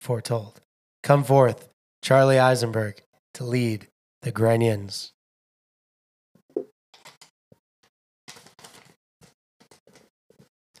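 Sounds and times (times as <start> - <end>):
speech: 0.1 - 5.2
crinkly paper sheets rustling as they are handled and shuffled: 8.3 - 10.7.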